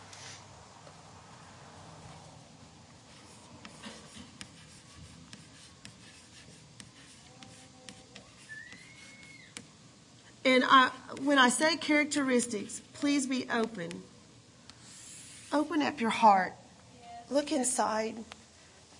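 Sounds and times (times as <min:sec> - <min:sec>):
pen scratching while writing: 0:03.1 - 0:09.3
speech: 0:10.5 - 0:14.1, 0:15.5 - 0:16.6, 0:17.3 - 0:18.4.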